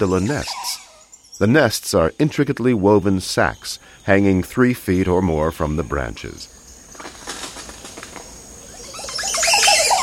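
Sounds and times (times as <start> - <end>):
speech: 0.0 - 0.8, 1.4 - 6.6
oropendola singing in a tall tree hung with woven nests: 0.0 - 10.0
faint clicks and rustles: 6.9 - 8.4.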